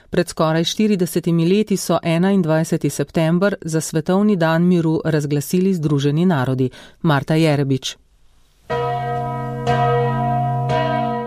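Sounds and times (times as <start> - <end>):
speech: 0.1 - 8.0
church bells ringing: 8.7 - 11.2.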